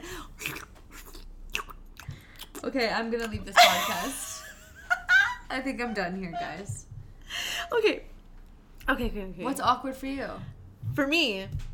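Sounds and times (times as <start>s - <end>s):
noisy bubblegum chewing with wet smacking: 0.2s - 3.6s
speech: 2.6s - 4.3s, 5.5s - 6.9s, 7.7s - 8.1s, 8.9s - 11.7s.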